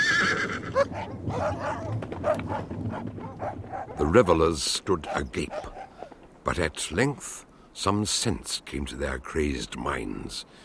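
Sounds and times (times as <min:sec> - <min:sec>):
horse whinnying with a high wavering cry: 0:00.0 - 0:01.6
dogs barking: 0:00.8 - 0:04.1, 0:05.0 - 0:06.1
speech: 0:03.5 - 0:05.8, 0:06.4 - 0:10.6.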